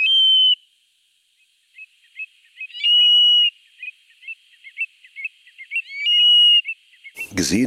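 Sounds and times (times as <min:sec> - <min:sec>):
Eurasian stone-curlew calling at night in hot weather: 0:00.0 - 0:00.7, 0:01.7 - 0:07.5
speech: 0:07.4 - 0:07.6.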